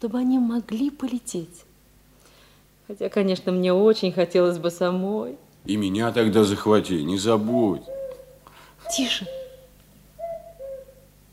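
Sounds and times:
speech: 0.0s - 1.7s, 2.9s - 8.0s, 8.9s - 9.4s
faint low hum: 0.0s - 11.3s
cuckoo calling: 7.0s - 11.2s.

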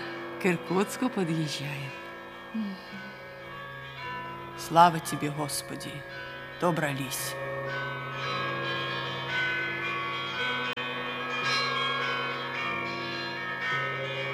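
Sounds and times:
several church bells ringing in a peal: 0.0s - 14.3s
speech: 0.4s - 3.2s, 4.6s - 8.4s.

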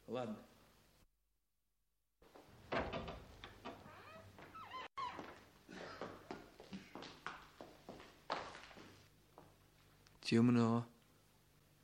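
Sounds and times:
speech: 0.1s - 0.6s, 10.3s - 10.9s
unlocked door pushed open with a clunk and a scrape: 2.7s - 4.3s
uneven footsteps of someone walking in: 3.3s - 10.0s.

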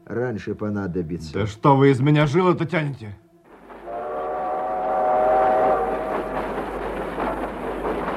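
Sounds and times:
speech: 0.1s - 3.2s
train whistle: 3.8s - 6.9s
rolling rail cars rumbling and clattering: 4.8s - 8.1s.

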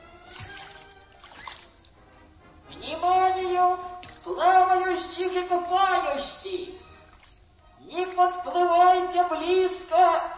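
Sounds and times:
faint sloshing swells of river water: 0.0s - 7.8s
gentle waves lapping against a rescue boat by a Volga river beach: 0.2s - 2.0s, 3.7s - 5.8s
speech: 4.3s - 6.8s, 7.9s - 10.3s.

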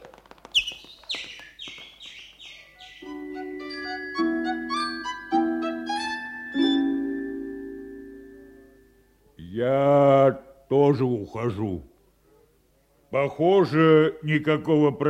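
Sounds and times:
sparrow chirping: 0.5s - 4.1s
sustained ringing tones: 3.0s - 9.2s
speech: 10.7s - 11.9s, 13.1s - 15.0s.

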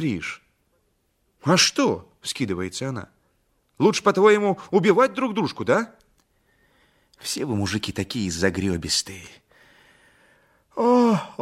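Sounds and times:
speech: 0.0s - 0.4s, 1.4s - 3.2s, 3.8s - 6.0s, 7.2s - 9.4s, 10.8s - 11.4s
woman yawning: 10.8s - 11.4s.

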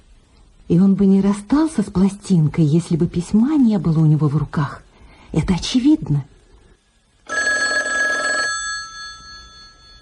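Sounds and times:
speech: 0.7s - 6.3s
telephone bell ringing: 7.3s - 10.0s.

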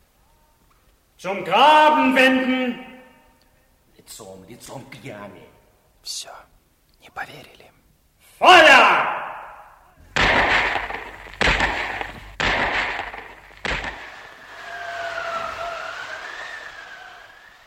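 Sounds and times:
speech: 1.2s - 2.9s, 4.1s - 7.8s, 8.4s - 9.2s
thin wavering whine: 10.0s - 17.6s
loud gunshots of an execution: 10.1s - 15.2s.

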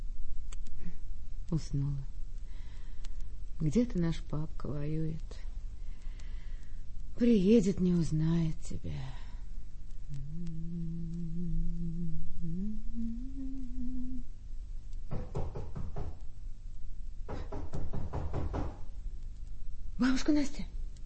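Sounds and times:
low humming tone: 0.0s - 15.1s
speech: 1.5s - 2.1s, 3.6s - 5.5s, 7.2s - 9.2s, 20.0s - 20.7s
knocking on a door: 15.1s - 16.2s, 17.3s - 18.9s.

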